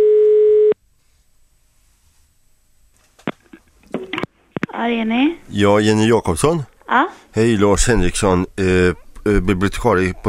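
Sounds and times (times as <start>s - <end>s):
telephone ringing tone on outgoing call from a library: 0.0s - 0.8s
speech: 4.8s - 10.2s.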